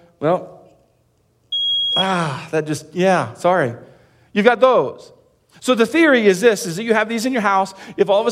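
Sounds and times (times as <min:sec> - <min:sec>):
speech: 0:00.2 - 0:00.6, 0:02.0 - 0:08.3
smoke detector test beep: 0:01.5 - 0:02.2.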